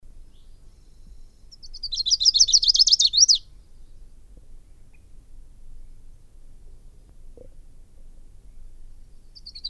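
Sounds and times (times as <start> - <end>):
Lucy's warbler song fast high trill: 1.2 - 3.4.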